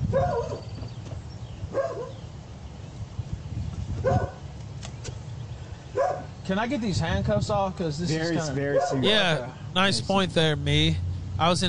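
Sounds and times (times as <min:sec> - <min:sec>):
dog barking: 0:00.1 - 0:00.7, 0:01.7 - 0:02.2, 0:04.0 - 0:04.4, 0:05.9 - 0:06.3, 0:08.7 - 0:09.1
speech: 0:06.5 - 0:11.6.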